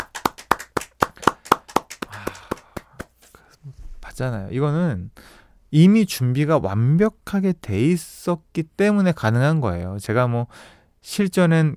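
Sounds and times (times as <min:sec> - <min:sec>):
hands clapping in a studio: 0:00.0 - 0:03.4
speech: 0:04.2 - 0:11.7.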